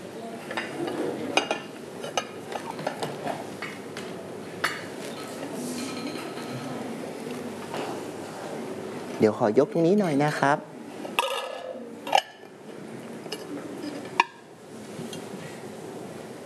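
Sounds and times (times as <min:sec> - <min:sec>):
ceramic rice plates being set down on a table: 0:00.4 - 0:03.8, 0:04.6 - 0:06.8, 0:09.8 - 0:10.4, 0:11.1 - 0:12.6, 0:13.3 - 0:15.3
speech: 0:09.2 - 0:10.7.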